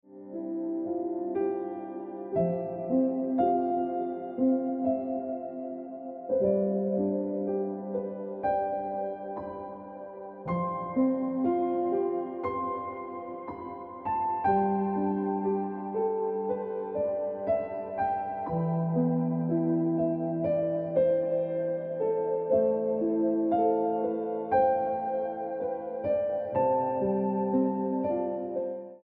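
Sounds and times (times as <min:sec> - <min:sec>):
piano ringtone music: 0:00.1 - 0:29.0.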